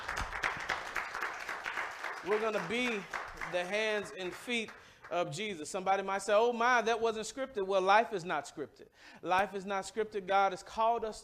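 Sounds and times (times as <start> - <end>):
audience clapping hands: 0.0 - 5.6
speech: 2.2 - 11.2.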